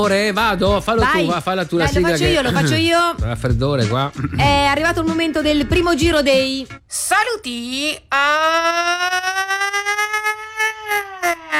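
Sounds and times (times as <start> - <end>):
speech: 0.0 - 9.6
ambulance siren wailing: 8.4 - 11.5.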